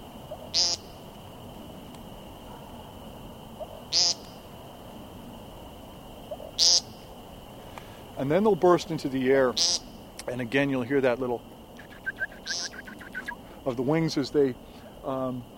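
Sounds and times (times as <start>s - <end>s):
faint steady hiss: 0.0s - 15.5s
speech: 0.5s - 0.8s, 8.2s - 11.5s, 13.6s - 15.5s
bird giving nasal ping calls on the ground: 9.6s - 9.9s, 11.8s - 13.4s
thin constant high tone: 11.8s - 13.4s.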